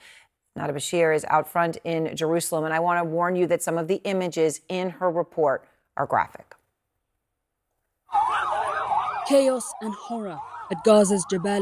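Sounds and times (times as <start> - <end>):
speech: 0.6 - 6.6, 9.3 - 11.6
ambulance siren wailing at a refugee camp: 8.1 - 11.6.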